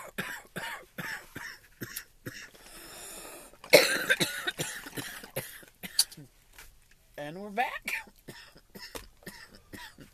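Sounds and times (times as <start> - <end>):
person coughing: 0.0 - 2.6, 3.6 - 6.3, 7.8 - 10.1
speech: 7.3 - 7.9.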